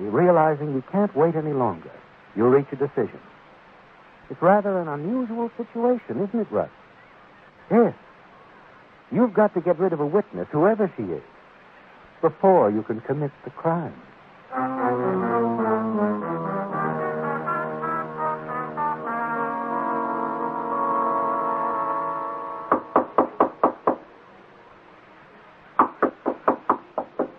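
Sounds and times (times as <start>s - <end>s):
speech: 0.0s - 3.3s, 4.3s - 6.8s, 7.7s - 8.0s, 9.1s - 11.3s, 12.2s - 15.4s
sustained swelling musical tones: 14.5s - 23.2s
person rapping sharply on a door: 22.7s - 24.0s, 25.8s - 27.3s.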